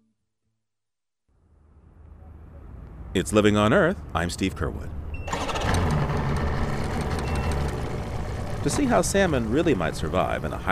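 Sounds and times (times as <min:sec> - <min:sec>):
speech: 0:03.1 - 0:05.0, 0:08.6 - 0:10.6
boat engine idling on the Duwamish River in Seattle: 0:05.3 - 0:10.6.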